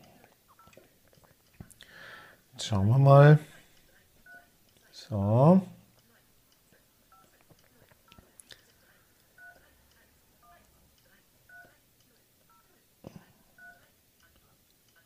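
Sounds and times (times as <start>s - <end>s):
speech: 2.6s - 3.5s, 5.1s - 5.7s
touch-tone beeps from dialing on a mobile phone: 4.2s - 4.5s, 9.4s - 9.6s, 11.5s - 11.7s, 13.6s - 13.8s.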